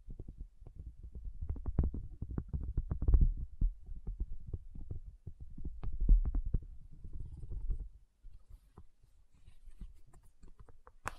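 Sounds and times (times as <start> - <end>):
low tapping knocks and thumps: 0.0 - 8.0.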